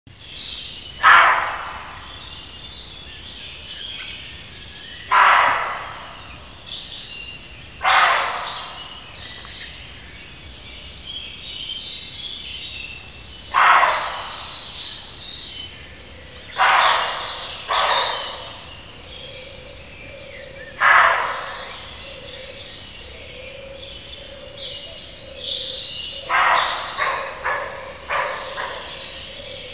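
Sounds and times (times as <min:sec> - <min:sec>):
male roe deer barking: 0:01.0 - 0:02.1, 0:05.1 - 0:06.4, 0:07.8 - 0:09.1, 0:13.5 - 0:14.8, 0:16.5 - 0:22.6, 0:25.6 - 0:29.7.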